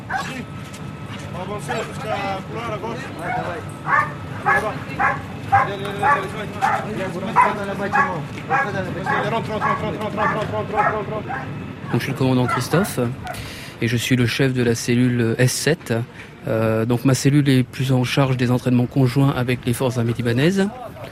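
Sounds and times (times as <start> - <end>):
military intervention dogs barking during training: 0.0 - 0.4, 1.1 - 2.2, 3.1 - 13.6
speech: 0.2 - 21.0.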